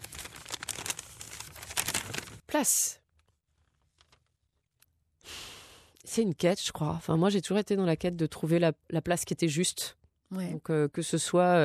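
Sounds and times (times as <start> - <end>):
small slip of paper being unfolded: 0.0 - 2.4, 3.1 - 4.4
speech: 2.6 - 3.0, 6.1 - 11.6.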